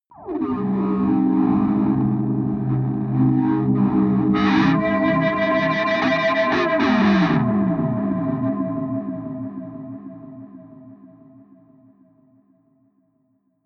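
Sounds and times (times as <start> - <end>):
hard atmospheric distorted feedback drone: 0.3 - 10.2.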